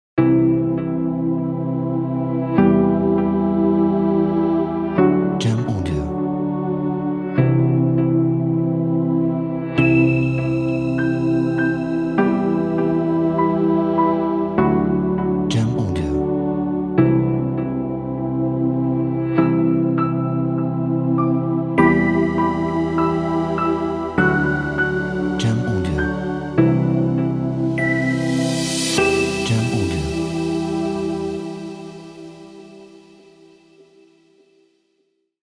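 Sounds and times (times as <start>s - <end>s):
ambient urban promo music: 0.2s - 34.3s.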